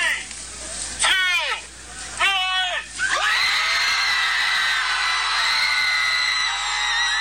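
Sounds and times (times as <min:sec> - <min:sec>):
group of people yelling outdoors: 0:02.2 - 0:07.1
group of people screaming in a park: 0:03.0 - 0:07.1.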